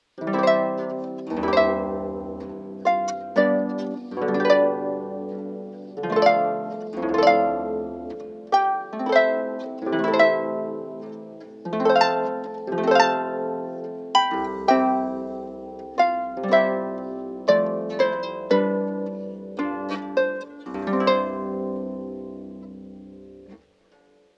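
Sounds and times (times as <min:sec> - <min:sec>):
harp: 0:00.0 - 0:24.3.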